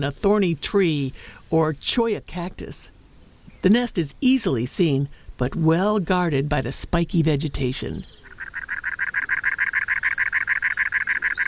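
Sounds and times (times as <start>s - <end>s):
speech: 0.0s - 3.0s, 3.6s - 8.2s
cactus wren harsh churring call: 7.3s - 11.4s.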